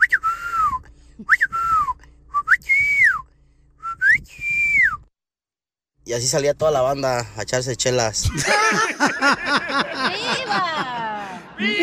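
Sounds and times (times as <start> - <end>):
person whistling a family call whistle: 0.0 - 5.1
speech: 6.1 - 11.0, 11.6 - 11.8
laughter: 8.3 - 11.8.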